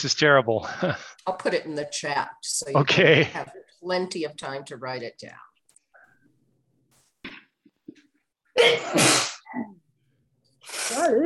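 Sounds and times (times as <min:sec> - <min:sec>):
speech: 0:00.0 - 0:05.5, 0:08.6 - 0:09.7, 0:10.7 - 0:11.2
loud sneeze from a person on an online call: 0:08.6 - 0:09.7.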